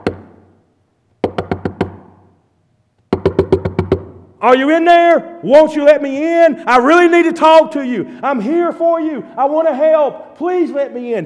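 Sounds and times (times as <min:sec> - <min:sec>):
firm knocking on a wooden door: 0:01.2 - 0:02.0, 0:03.1 - 0:04.1
speech: 0:04.4 - 0:11.2.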